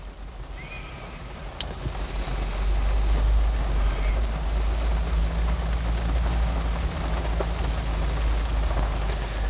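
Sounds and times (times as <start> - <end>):
rain pattering against a car window: 0.0 - 9.4.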